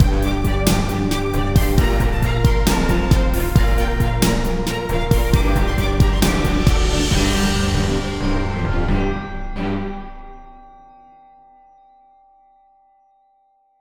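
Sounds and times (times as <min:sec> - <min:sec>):
intense symphonic music: 0:00.0 - 0:10.8.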